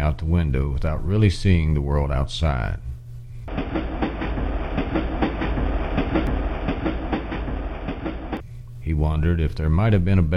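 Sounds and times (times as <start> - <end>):
speech: 0.1 - 2.9, 8.9 - 10.3
train rolling over rail joints heard from inside a carriage: 3.5 - 8.4.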